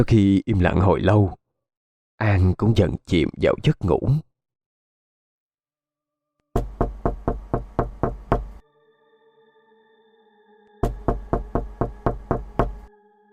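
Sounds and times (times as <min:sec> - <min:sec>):
speech: 0:00.0 - 0:01.4, 0:02.2 - 0:04.3
knocking on a house door: 0:06.6 - 0:08.6, 0:10.8 - 0:12.8.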